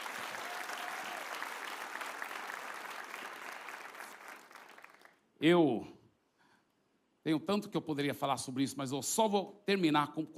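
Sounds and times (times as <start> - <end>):
large audience applause: 0.0 - 5.2
speech: 5.4 - 6.0, 7.2 - 10.3.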